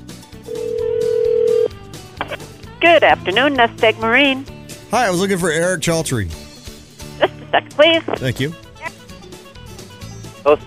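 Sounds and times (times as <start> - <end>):
mid-pitched telephone ringback tone: 0.4 - 1.8
speech: 2.8 - 6.4, 7.2 - 8.6, 10.4 - 10.6.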